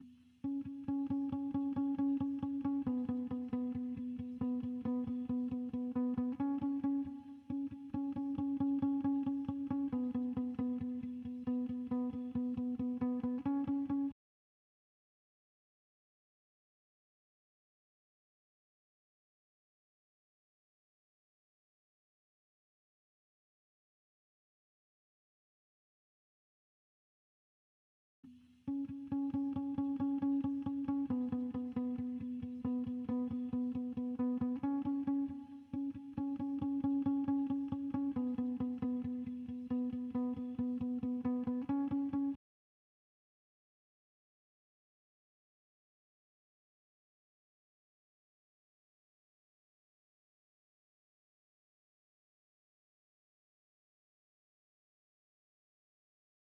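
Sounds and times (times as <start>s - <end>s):
136 BPM E major guitar layer loop: 0.0s - 14.1s, 28.7s - 42.4s.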